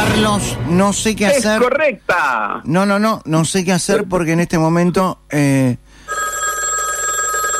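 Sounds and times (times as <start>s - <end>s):
speech: 0.2s - 5.8s
telephone ringing with electronic tone: 6.0s - 7.5s.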